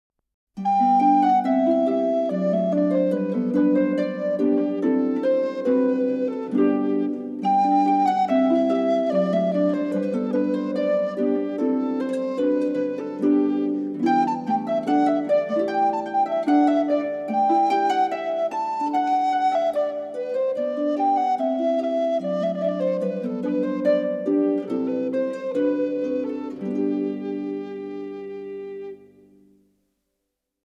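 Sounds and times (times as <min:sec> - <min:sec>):
folk tune melody: 0:00.6 - 0:29.6.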